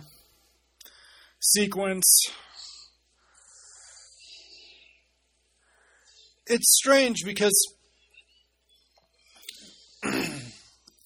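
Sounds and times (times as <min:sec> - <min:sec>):
speech: 0:01.4 - 0:02.4, 0:06.5 - 0:07.8
person coughing harshly: 0:10.0 - 0:10.7.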